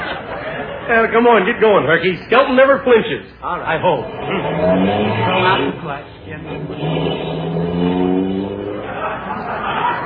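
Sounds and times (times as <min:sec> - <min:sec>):
laughter: 0:00.0 - 0:01.8, 0:08.2 - 0:10.0
speech: 0:00.9 - 0:07.3
car engine revving as the car drives off: 0:03.7 - 0:10.0.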